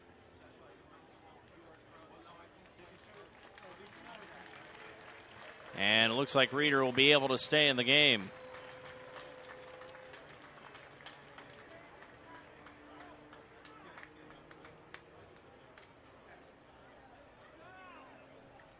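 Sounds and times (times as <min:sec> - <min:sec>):
murmur of voices in ballpark crowd: 0:00.0 - 0:18.7
large outdoor ballpark crowd clapping: 0:02.5 - 0:15.9
speech: 0:05.7 - 0:08.4
shouts from ballpark crowd: 0:17.6 - 0:18.2.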